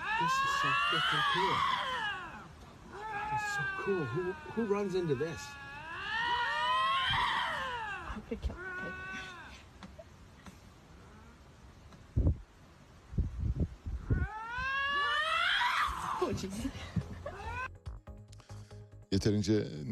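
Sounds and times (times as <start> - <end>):
two lynxes fighting and yowling: 0.0 - 10.1, 14.0 - 17.7
speech: 0.2 - 1.8, 3.3 - 5.6, 8.2 - 9.0, 19.2 - 19.9.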